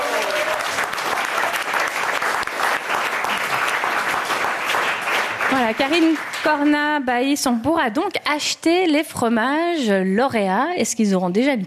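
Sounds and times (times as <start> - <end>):
audience applauding: 0.0 - 7.0
speech: 5.5 - 11.6.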